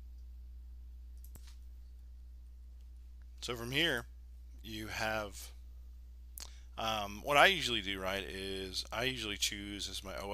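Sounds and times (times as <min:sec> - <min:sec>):
steady low electrical hum: 0:00.0 - 0:10.3
computer mouse click: 0:01.2 - 0:01.6
speech: 0:03.4 - 0:05.6, 0:06.8 - 0:10.3.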